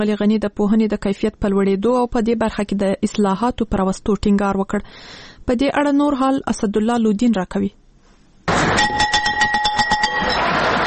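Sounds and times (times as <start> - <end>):
speech: 0.0 - 7.8
school bell ringing at a new school year opening ceremony in Afghanistan: 8.7 - 10.8.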